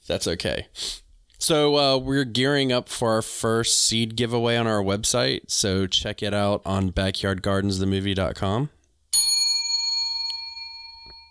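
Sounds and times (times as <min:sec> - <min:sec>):
speech: 0:00.1 - 0:08.8
bell ding: 0:09.2 - 0:11.2.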